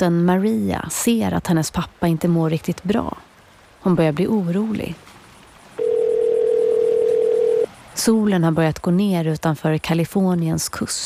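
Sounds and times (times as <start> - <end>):
speech: 0.0 - 5.1, 8.0 - 11.0
steady telephone dial tone: 5.8 - 7.7.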